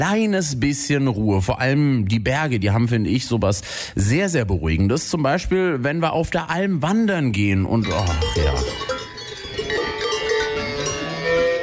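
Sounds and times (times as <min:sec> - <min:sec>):
speech: 0:00.0 - 0:09.0
cowbells on grazing cows clanking: 0:07.7 - 0:11.6.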